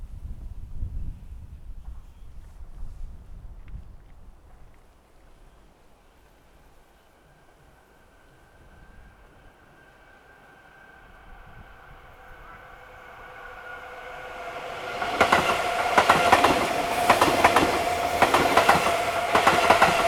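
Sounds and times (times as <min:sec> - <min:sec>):
up train passing: 0:06.2 - 0:20.0.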